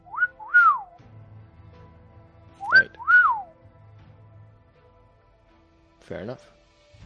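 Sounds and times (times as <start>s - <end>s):
person whistling an alert signal: 0.0s - 1.0s, 2.6s - 3.5s
speech: 6.1s - 6.6s.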